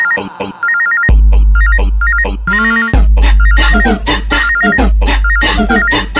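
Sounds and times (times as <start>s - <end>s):
mobile phone ringtone with a short high electronic melody: 0.0s - 6.1s
loud dance beat with heavy bass: 1.1s - 6.1s.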